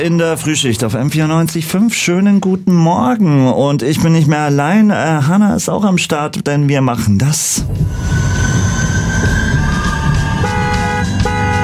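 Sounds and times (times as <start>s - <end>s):
tram rumbling with low mechanical noise: 0.0s - 2.1s, 7.4s - 11.6s
speech: 0.0s - 9.7s
tram metallic wheel squeals and tonal whines: 8.2s - 11.6s.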